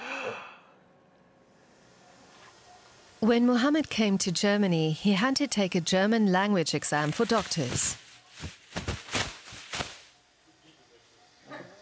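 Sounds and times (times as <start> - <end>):
person taking a deep breath: 0.0 - 0.7
speech: 3.2 - 8.6.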